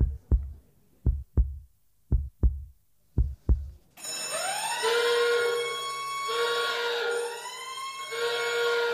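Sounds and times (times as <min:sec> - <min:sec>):
heartbeat-like thumps: 0:00.0 - 0:03.8
alarm bell ringing with a wavering siren-like tone: 0:04.0 - 0:08.9.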